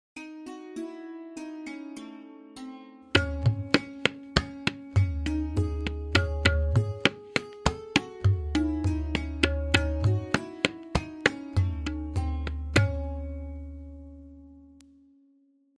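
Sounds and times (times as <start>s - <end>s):
lehra melodic accompaniment with tihai cadence: 3.2s - 13.7s.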